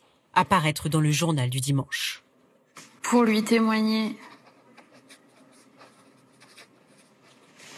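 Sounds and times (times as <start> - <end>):
speech: 0.4 - 2.2, 3.1 - 4.3
pen scratching across paper: 4.2 - 7.7.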